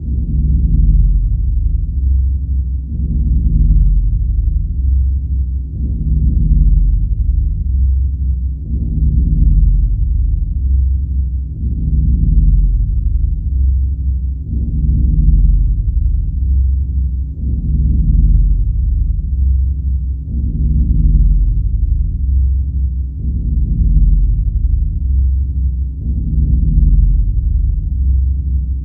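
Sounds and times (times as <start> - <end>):
energy ambience: 0.0 - 28.8.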